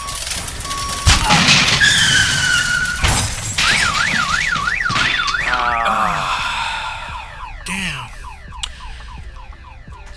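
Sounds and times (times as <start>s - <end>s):
emergency sirens wailing: 0.0s - 10.1s
car being dropped and smashing: 0.2s - 5.8s.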